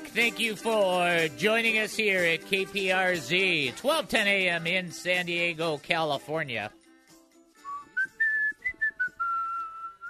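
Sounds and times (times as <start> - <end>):
speech: 0.2 - 6.8
person whistling a short lilting tune during a radio broadcast: 7.6 - 10.0.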